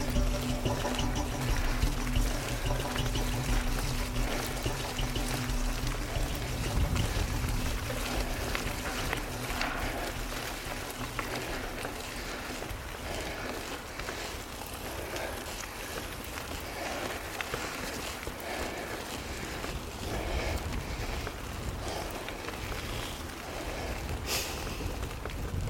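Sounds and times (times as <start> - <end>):
footsteps squelching through wet ground on a hill climb: 0.0 - 25.6.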